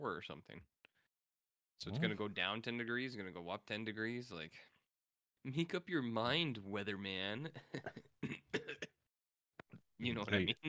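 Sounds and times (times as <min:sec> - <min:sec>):
speech: 0:00.0 - 0:00.8, 0:01.8 - 0:04.8, 0:05.4 - 0:08.9, 0:10.0 - 0:10.6
raspy throat clearing: 0:08.2 - 0:09.0.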